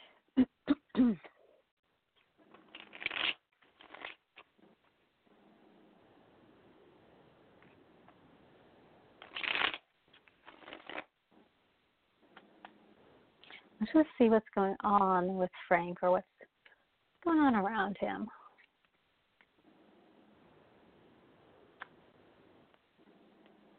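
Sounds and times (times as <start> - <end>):
deck of tarot cards being shuffled: 2.5 - 4.6, 9.2 - 11.1
speech: 13.9 - 16.3, 17.2 - 18.4.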